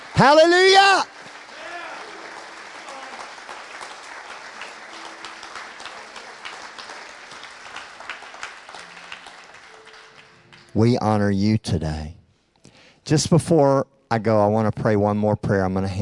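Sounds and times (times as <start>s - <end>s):
audience applause: 0.0s - 10.9s
speech: 0.2s - 1.1s, 10.8s - 12.2s, 13.1s - 16.0s.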